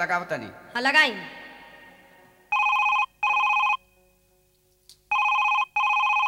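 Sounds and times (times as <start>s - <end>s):
speech: 0.0s - 1.4s
telephone ringing with electronic trill: 2.5s - 3.9s, 5.1s - 6.2s.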